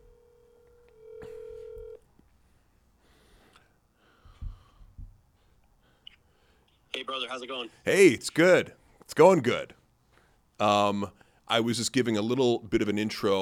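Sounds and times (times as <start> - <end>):
ringback tone of an outgoing phone call: 0.0 - 2.0
breaths: 3.0 - 6.9, 10.0 - 10.5, 11.2 - 11.5
speech: 7.1 - 9.8, 10.6 - 13.4.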